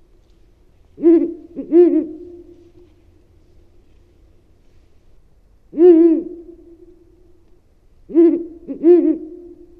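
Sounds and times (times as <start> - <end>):
Ural owl hooting: 1.0 - 3.0, 5.7 - 7.2, 8.1 - 9.7.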